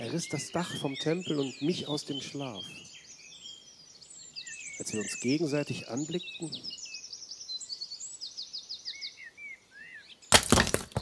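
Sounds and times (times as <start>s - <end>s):
birds chirping and tweeting: 0.0s - 11.0s
speech: 0.1s - 2.9s, 4.8s - 6.8s
something shattering into a thousand pieces: 10.3s - 11.0s.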